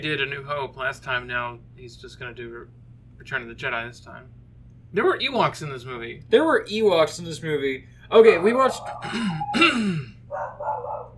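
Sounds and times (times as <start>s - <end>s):
speech: 0.0s - 10.9s
dog barking with a sliding yelping tone: 8.3s - 11.1s.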